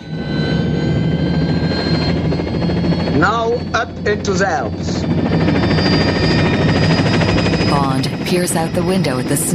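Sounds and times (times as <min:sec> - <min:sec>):
orange and white helicopter engine and rotor whirring as blades begin to spin: 0:00.0 - 0:09.5
speech: 0:03.2 - 0:06.5, 0:08.0 - 0:09.5.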